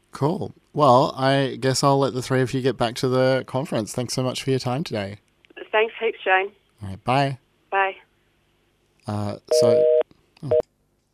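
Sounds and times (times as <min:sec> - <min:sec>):
speech: 0:00.2 - 0:05.2, 0:06.1 - 0:08.0, 0:09.1 - 0:10.7
steady electronic telephone tone: 0:09.5 - 0:10.6.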